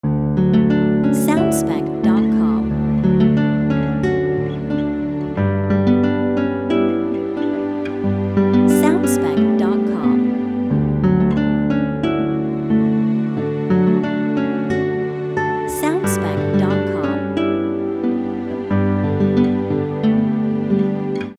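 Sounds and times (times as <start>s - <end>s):
short guitar loop: 0.4s - 21.3s.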